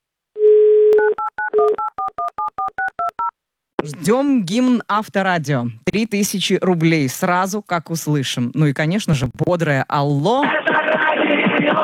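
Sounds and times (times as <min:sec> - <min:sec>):
steady telephone tone: 0:00.4 - 0:03.3
speech: 0:03.8 - 0:11.0.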